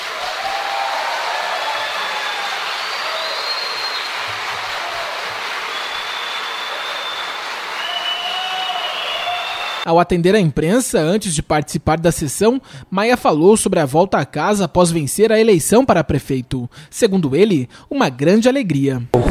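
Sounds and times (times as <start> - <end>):
large crowd applauding in council chamber: 0.0 - 9.9
faint high whistles: 1.5 - 4.8, 5.4 - 9.9
speech: 9.8 - 19.2.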